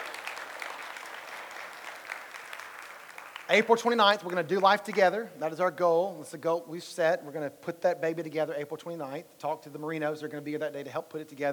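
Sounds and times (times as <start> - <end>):
large crowd clapping for a playground fundraising goal: 0.0 - 5.2
speech: 3.5 - 11.5.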